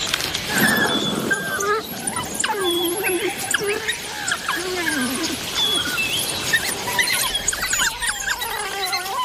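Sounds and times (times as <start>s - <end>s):
African wild dog pups yipping and whimpering: 0.2s - 9.2s.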